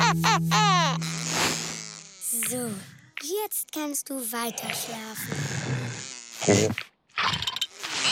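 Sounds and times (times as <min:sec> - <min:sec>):
housefly buzzing: 0:00.2 - 0:03.5, 0:04.3 - 0:06.9, 0:07.7 - 0:08.0
speech: 0:02.5 - 0:07.4.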